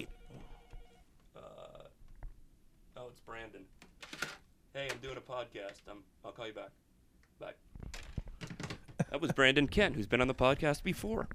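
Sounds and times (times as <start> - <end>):
mobile phone short electronic ringtone: 0.0 - 1.1
speech: 3.4 - 6.8, 7.4 - 7.6, 9.1 - 11.3.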